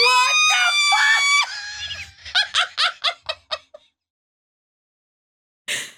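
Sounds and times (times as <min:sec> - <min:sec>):
two people screaming loudly: 0:00.0 - 0:02.7
people laughing in breathy bursts: 0:00.3 - 0:03.8.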